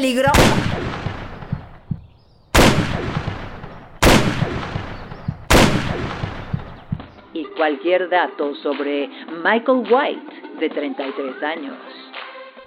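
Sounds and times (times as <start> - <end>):
speech: 0.0 - 1.0, 7.6 - 12.0
gunshots fired at a fence: 0.2 - 7.2.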